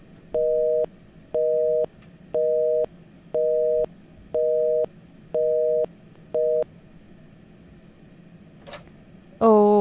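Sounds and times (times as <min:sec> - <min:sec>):
telephone busy tone from a failed caller connection: 0:00.4 - 0:06.6.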